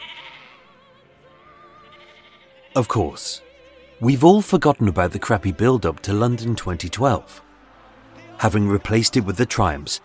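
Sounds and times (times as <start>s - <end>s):
sheep bleating: 0.0s - 0.8s, 1.6s - 3.4s
speech: 2.8s - 7.4s, 8.4s - 10.0s.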